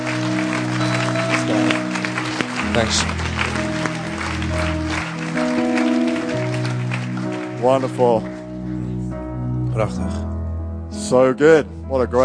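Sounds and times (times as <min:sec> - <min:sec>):
audience applause: 0:00.0 - 0:09.0
sustained musical tones: 0:00.0 - 0:10.8
speech: 0:02.8 - 0:03.2, 0:07.6 - 0:08.4, 0:09.8 - 0:10.3, 0:11.1 - 0:12.2.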